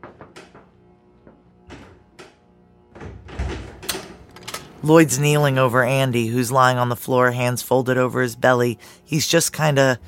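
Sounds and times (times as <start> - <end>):
heavy metal engine room door clunks and knocks: 0.0 - 4.9
speech: 4.8 - 10.0.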